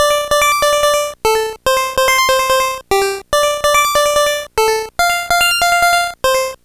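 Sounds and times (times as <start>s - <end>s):
Game Boy 8-bit chiptune synth: 0.0s - 6.6s.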